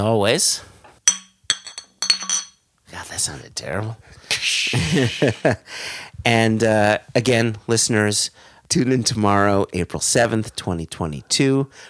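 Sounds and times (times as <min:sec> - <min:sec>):
speech: 0:00.0 - 0:00.7, 0:03.2 - 0:11.8
beer glasses clinking in a toast: 0:01.1 - 0:02.6
laughter: 0:04.3 - 0:05.7.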